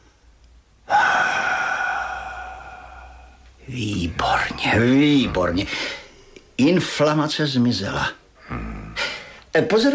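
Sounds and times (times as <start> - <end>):
loud forced breathy exhale during a mock medical examination: 0.9 - 3.4
speech: 3.7 - 6.0, 6.6 - 8.2, 9.5 - 9.9.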